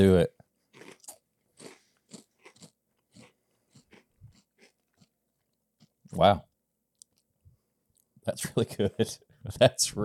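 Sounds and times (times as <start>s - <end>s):
speech: 0.0s - 0.4s, 6.2s - 6.5s, 8.3s - 10.0s
person chewing crunchy cinnamon cereal: 0.7s - 6.0s.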